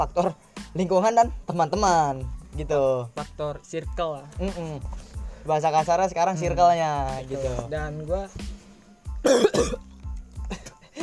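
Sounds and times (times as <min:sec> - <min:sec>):
speech: 0:00.0 - 0:08.6, 0:09.2 - 0:09.8
rough chesty smoker's cough: 0:09.2 - 0:09.8, 0:10.5 - 0:11.0
throat clearing: 0:09.2 - 0:09.9.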